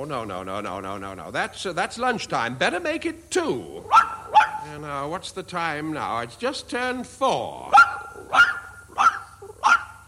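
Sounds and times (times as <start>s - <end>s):
speech: 0.0s - 8.6s
dog barking: 3.9s - 4.6s, 7.7s - 10.0s.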